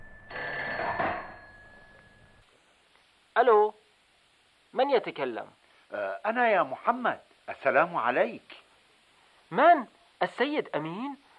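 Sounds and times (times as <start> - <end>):
telephone bell ringing: 0.0 - 2.4
speech: 3.4 - 3.8, 4.7 - 8.6, 9.5 - 11.2.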